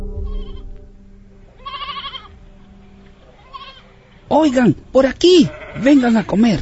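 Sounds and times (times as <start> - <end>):
goats bleating: 0.2 - 0.7, 1.5 - 2.5, 3.0 - 6.5
speech: 4.4 - 6.5.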